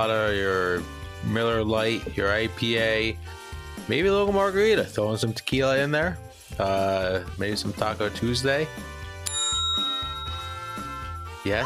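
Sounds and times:
speech: 0.0 - 9.0, 11.4 - 11.6
small hand bell ringing: 9.2 - 11.6.

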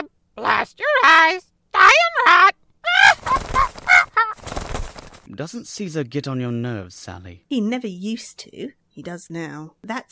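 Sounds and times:
parrot squawking: 0.0 - 4.6
speech: 0.6 - 2.5, 5.4 - 10.1.

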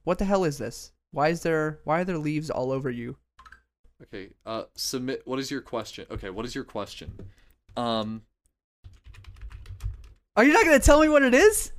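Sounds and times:
speech: 0.0 - 3.2, 4.0 - 8.3, 10.4 - 11.7
typing on a computer keyboard: 8.8 - 10.2.

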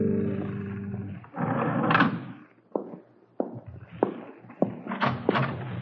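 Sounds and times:
loud low rumbling roar: 0.0 - 1.2
footsteps on a hard floor in a hallway: 2.7 - 5.7.

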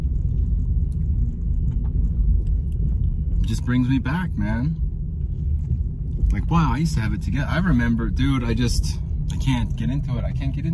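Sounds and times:
road rumble in the cabin of a moving car: 0.0 - 10.7
speech: 3.5 - 4.9, 6.3 - 10.7.

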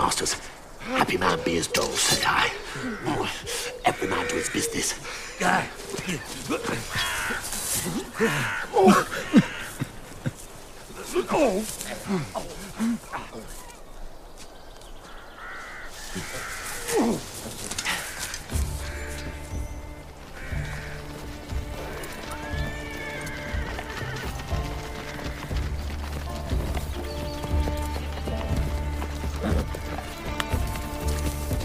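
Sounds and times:
speech: 0.2 - 0.5, 1.1 - 9.5, 11.2 - 13.5
horse hooves clip-clopping down a hill: 1.1 - 13.8, 14.4 - 31.6
horse whinnying: 16.2 - 25.5, 27.4 - 31.6.

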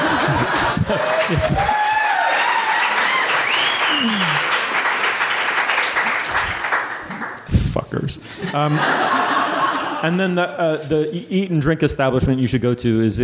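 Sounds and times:
people chuckling and laughing: 0.0 - 2.0, 8.4 - 10.5
crowd applauding: 0.0 - 7.4
speech: 0.9 - 1.9, 8.0 - 9.0, 10.0 - 13.2.

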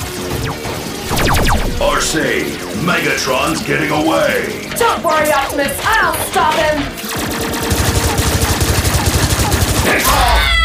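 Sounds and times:
rapid gunfire in a comedic robot-battle skit: 0.2 - 2.6, 6.9 - 10.0
high sweep: 0.4 - 2.6
speech: 1.8 - 7.3, 9.9 - 10.5.

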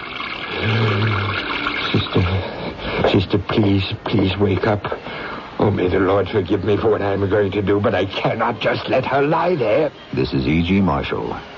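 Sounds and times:
water pouring into a vessel: 0.0 - 4.9
speech: 3.2 - 11.5.

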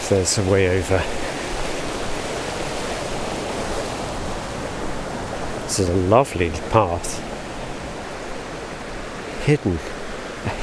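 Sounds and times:
stream water flowing beside a footpath: 0.0 - 10.6
speech: 0.1 - 1.4, 5.8 - 7.3, 9.5 - 10.6.

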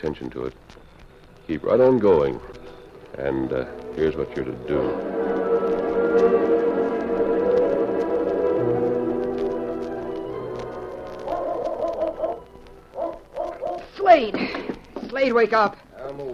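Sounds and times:
speech: 0.0 - 0.9, 1.5 - 5.3, 6.1 - 7.2, 15.2 - 16.3
steady droning tones: 0.0 - 14.0
dog barking: 11.3 - 12.4, 13.0 - 13.9.

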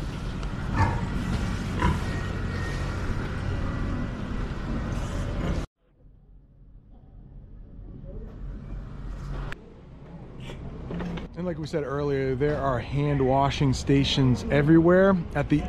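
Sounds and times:
low rumble: 0.0 - 10.3
busy noisy barn ambience: 0.6 - 3.9
pig grunting: 0.7 - 2.8
speech: 11.4 - 15.6.

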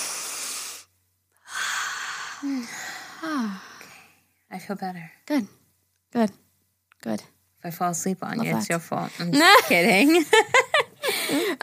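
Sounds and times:
short voiced sighs: 0.0 - 4.2, 11.0 - 11.6
deep breath taken as a group exercise: 0.0 - 4.3, 11.0 - 11.6
speech: 2.4 - 3.7, 4.5 - 6.4, 7.0 - 10.7, 11.3 - 11.6.

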